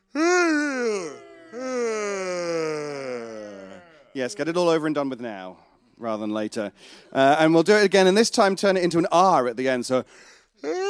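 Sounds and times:
group of people yawning loudly: 0.1 - 4.5
speech: 4.2 - 10.8.

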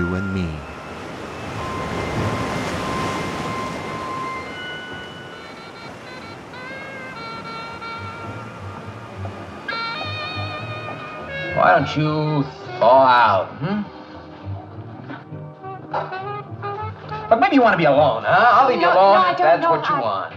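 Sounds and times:
sustained whistling tones: 0.0 - 12.9
ocean waves rolling onto shore: 0.0 - 13.5
speech: 11.7 - 14.0, 17.3 - 20.3.

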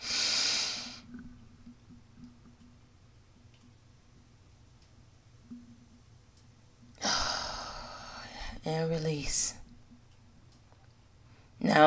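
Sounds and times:
deep breath drawn in and released: 0.0 - 1.1, 7.0 - 8.6
speech: 8.7 - 9.6.

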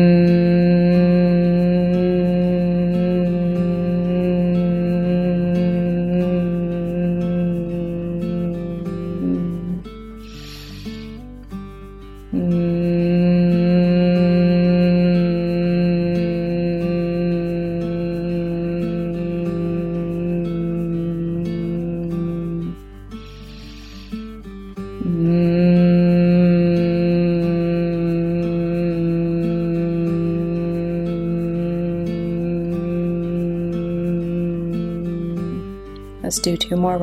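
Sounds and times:
steady low hummed tone: 0.0 - 11.1, 12.3 - 22.8, 25.0 - 35.6
short breath: 10.2 - 11.3, 23.2 - 24.4
speech: 36.4 - 37.0.

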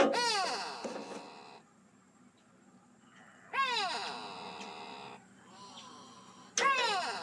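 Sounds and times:
gray go-away bird nasal wailing call: 0.0 - 1.6, 3.5 - 6.0, 6.6 - 7.2.

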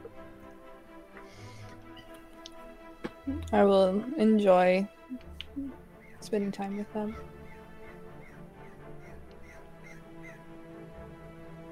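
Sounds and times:
speech: 3.3 - 7.3
crow cawing outside a window: 6.0 - 10.5.

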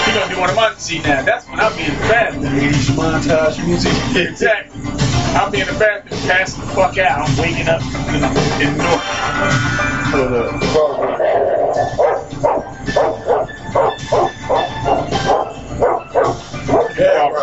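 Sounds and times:
speech: 0.1 - 11.2
dog barking: 11.6 - 17.0.

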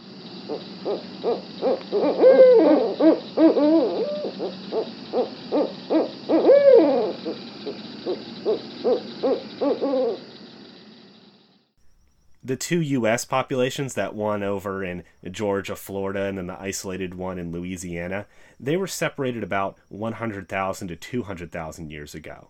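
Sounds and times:
barred owl hooting: 0.4 - 10.8
speech: 0.5 - 5.4, 12.5 - 22.4.

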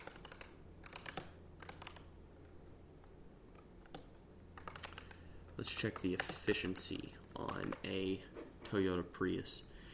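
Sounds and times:
typing on a computer keyboard: 0.0 - 2.1, 3.5 - 8.0
low steady hum: 0.0 - 9.9
speech: 5.6 - 9.7.

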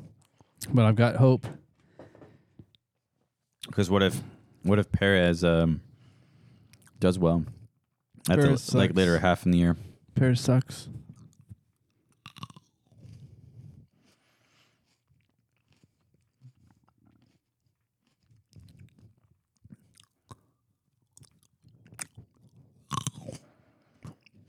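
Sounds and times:
speech: 0.7 - 1.6, 3.7 - 5.9, 7.0 - 7.6, 8.2 - 11.0
person chewing crunchy snack: 11.1 - 24.4.

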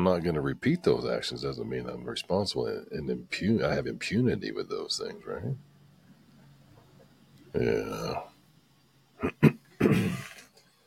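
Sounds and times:
speech: 0.0 - 5.7, 7.5 - 8.3, 9.2 - 10.1
throat clearing into a microphone: 9.2 - 10.5.

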